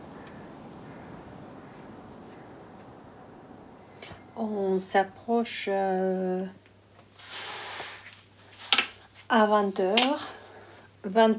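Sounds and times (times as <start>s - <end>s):
bird calling: 0.0s - 4.4s
outdoor noise: 0.0s - 11.3s
speech: 4.4s - 6.6s, 9.3s - 10.4s, 11.0s - 11.3s.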